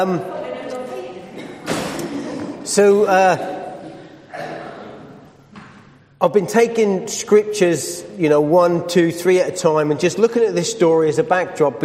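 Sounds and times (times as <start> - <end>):
speech: 0.0 - 0.4, 2.6 - 3.6, 6.2 - 11.8
door banging open: 1.5 - 2.2.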